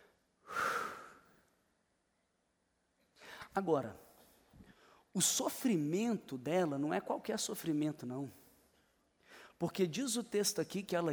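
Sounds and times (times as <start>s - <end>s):
demonstrative breath: 0.4s - 1.3s, 9.2s - 9.6s
speech: 3.6s - 4.0s, 5.2s - 8.4s, 9.6s - 11.1s.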